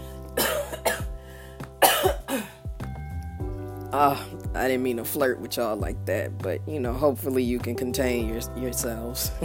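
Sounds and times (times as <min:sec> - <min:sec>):
person coughing in a harsh fit: 0:00.4 - 0:01.2, 0:01.8 - 0:02.6
speech: 0:03.9 - 0:09.4.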